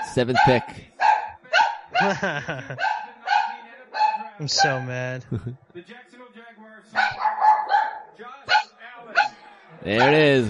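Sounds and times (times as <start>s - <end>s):
dog barking: 0.0s - 2.1s, 2.8s - 4.9s, 7.0s - 9.3s, 9.9s - 10.4s
speech: 0.2s - 0.9s, 2.0s - 3.0s, 4.4s - 10.4s
laughter: 2.0s - 3.4s, 4.4s - 5.6s.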